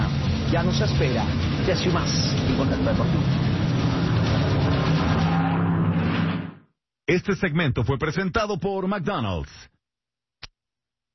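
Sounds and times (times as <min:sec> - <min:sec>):
race car engines roaring: 0:00.0 - 0:06.6
speech: 0:00.5 - 0:03.6, 0:07.1 - 0:09.7.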